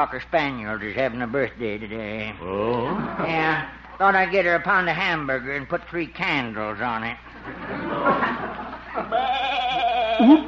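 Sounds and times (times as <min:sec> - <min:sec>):
speech: 0:00.0 - 0:09.4, 0:10.2 - 0:10.4
laughter: 0:02.4 - 0:04.6, 0:07.3 - 0:10.4
goat bleating: 0:09.1 - 0:10.4.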